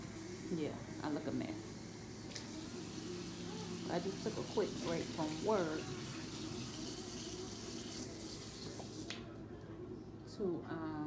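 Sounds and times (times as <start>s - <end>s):
running tap water while hair is being washed: 0.0s - 0.8s, 1.6s - 9.2s
speech: 0.5s - 2.4s, 3.9s - 6.1s, 10.4s - 10.9s.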